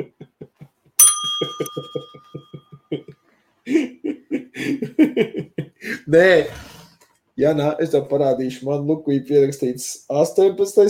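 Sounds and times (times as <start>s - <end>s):
small bell ringing: 1.0s - 2.9s
people laughing: 2.3s - 6.0s
speech: 6.1s - 6.6s, 7.4s - 10.8s.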